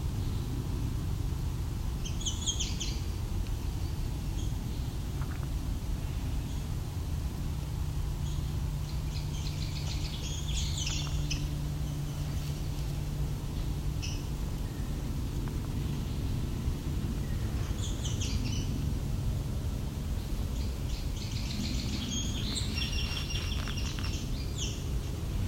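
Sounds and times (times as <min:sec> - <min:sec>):
low rumble of traffic: 0:00.0 - 0:25.4
yellow warbler calls and chatter: 0:02.0 - 0:05.4, 0:08.2 - 0:12.8, 0:13.5 - 0:15.0, 0:17.2 - 0:18.8, 0:20.2 - 0:25.4.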